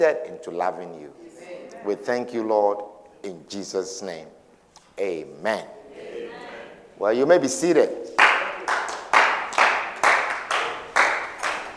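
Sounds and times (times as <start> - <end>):
speech: 0.0 - 4.4, 5.0 - 6.1, 7.0 - 8.2
audience clapping in a steady rhythm: 8.1 - 11.7.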